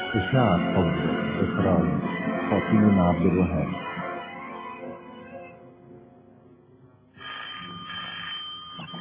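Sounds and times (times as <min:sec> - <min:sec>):
speech: 0:00.2 - 0:03.8
telephone ringing during a stage comedy scene: 0:07.2 - 0:08.9.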